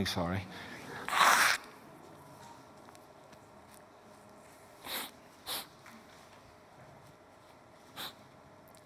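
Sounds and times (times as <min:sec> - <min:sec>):
speech: 0:00.0 - 0:00.7
person blowing nose: 0:01.1 - 0:01.6, 0:04.8 - 0:05.7, 0:07.9 - 0:08.2
person sniffing: 0:04.8 - 0:05.7, 0:07.9 - 0:08.2.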